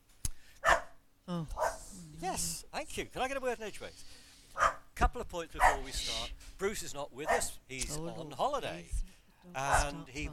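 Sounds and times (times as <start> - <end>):
dog barking short sharp yaps: 0.6 - 1.0, 1.6 - 1.8, 4.6 - 4.9, 5.6 - 5.9, 7.2 - 7.6
speech: 2.2 - 10.3.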